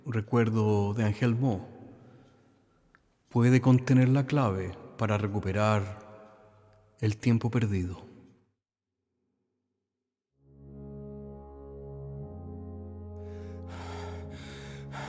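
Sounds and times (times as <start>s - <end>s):
speech: 0.1s - 1.7s, 3.3s - 6.0s, 7.0s - 8.1s
old man labored gasping breathing: 13.2s - 15.0s.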